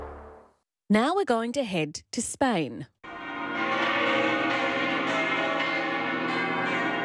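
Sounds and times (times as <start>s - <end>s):
speech: 0.9s - 3.0s
cathedral church bells pealing: 3.1s - 7.0s.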